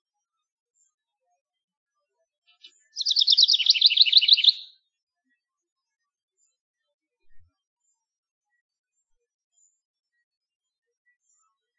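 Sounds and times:
House wren song: 2.6 - 4.7.

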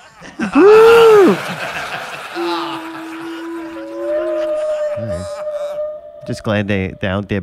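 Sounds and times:
laughter: 0.0 - 5.9
person imitating whale calls: 0.4 - 1.4, 2.4 - 7.4
speech: 0.5 - 1.5, 6.3 - 7.4.

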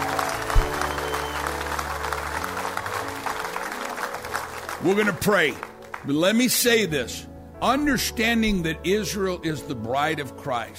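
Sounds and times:
congregation applause: 0.0 - 6.1
speech: 4.8 - 10.7.

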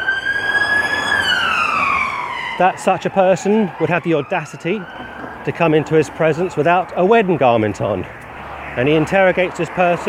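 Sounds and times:
ambulance siren wailing as it passes: 0.0 - 7.6
speech: 2.6 - 8.2, 8.8 - 10.0.

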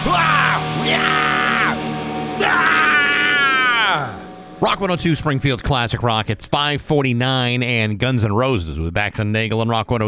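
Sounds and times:
people screaming and yelling: 0.0 - 5.4
speech: 0.9 - 1.2, 4.0 - 10.0.

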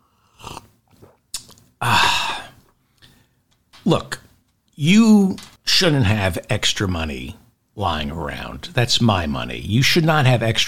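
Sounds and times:
wet mouth clicks and slurp of someone sipping from a cup: 0.4 - 1.7
person swallowing: 0.4 - 2.8
speech: 3.9 - 4.2, 4.8 - 10.6.

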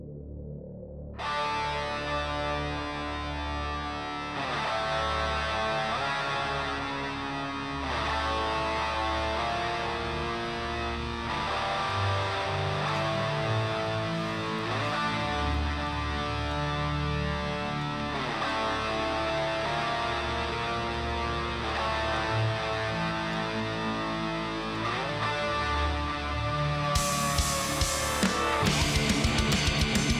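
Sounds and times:
thick overdriven guitars in distorted rock song: 1.2 - 30.1
driving bass line in distorted rock song: 26.9 - 30.1
pounding drums in distorted rock song: 27.0 - 30.1.

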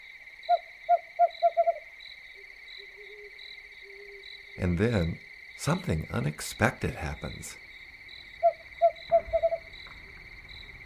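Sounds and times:
steady high insect drone: 0.0 - 10.8
screech owl giving short hollow toots: 0.5 - 1.9, 8.4 - 9.7
speech: 4.6 - 7.6.

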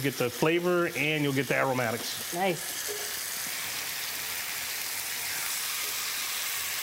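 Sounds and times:
speech: 0.0 - 3.0
meat with rosemary searing in a hot pan: 0.0 - 6.8.

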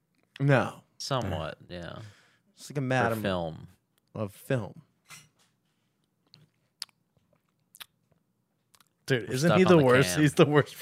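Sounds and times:
speech: 0.4 - 5.2, 9.1 - 10.7
mouth chewing: 6.3 - 8.0, 8.7 - 9.0.

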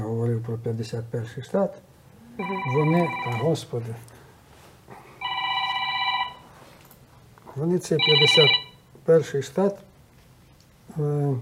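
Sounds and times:
speech: 0.5 - 4.2, 7.6 - 9.9, 11.0 - 11.3
phone ringing with an electronic warble: 2.4 - 3.7, 5.2 - 6.6, 8.0 - 8.9.

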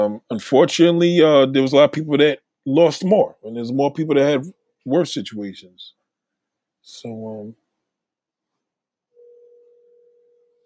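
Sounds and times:
speech: 0.0 - 6.0, 6.8 - 7.6
electronic ringing tone like a telephone's: 9.1 - 10.6.

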